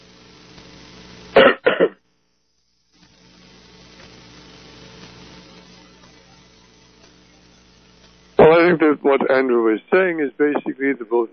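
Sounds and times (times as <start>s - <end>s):
faint steady hiss: 0.0s - 11.3s
throat clearing and coughing: 1.4s - 2.0s
speech: 8.7s - 11.3s.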